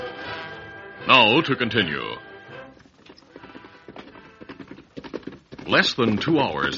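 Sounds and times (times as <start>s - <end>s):
speech: 1.1s - 2.3s, 5.7s - 6.7s
horse hooves clip-clopping as a rider arrives: 2.2s - 6.7s.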